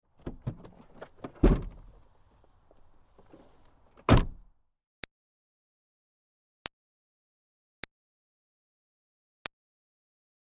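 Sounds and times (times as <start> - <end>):
2005 Smartcar Fortwo trunk opening and closing: 0.2 - 2.0, 3.3 - 4.5.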